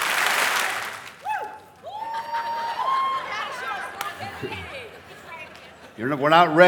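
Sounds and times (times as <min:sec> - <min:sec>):
large crowd clapping: 0:00.0 - 0:04.7
high whoops and cheers: 0:01.2 - 0:03.8
speech: 0:04.4 - 0:04.8, 0:06.0 - 0:06.6.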